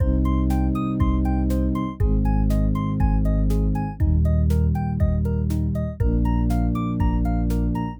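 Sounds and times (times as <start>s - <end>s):
pulsing music loop: 0.0s - 7.9s.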